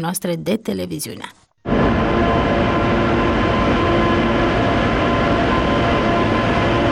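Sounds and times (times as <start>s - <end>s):
speech: 0.0s - 1.4s
Prietenia passenger train linking Chișinău and Bucharest rolling along the rails: 1.7s - 6.8s.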